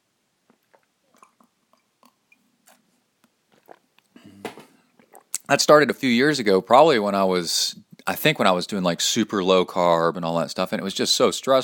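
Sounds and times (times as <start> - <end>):
mouth clicks and small wet sounds: 0.5 - 5.5
speech: 5.5 - 11.6.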